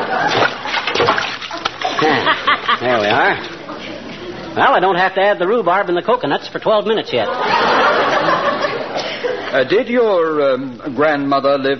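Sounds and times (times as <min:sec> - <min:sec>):
laughter: 0:00.0 - 0:00.8, 0:01.5 - 0:04.5, 0:07.2 - 0:09.6
diced potato cubes splashing into a pot of water: 0:00.2 - 0:02.0
speech: 0:02.0 - 0:03.6, 0:04.5 - 0:07.8, 0:09.5 - 0:11.7.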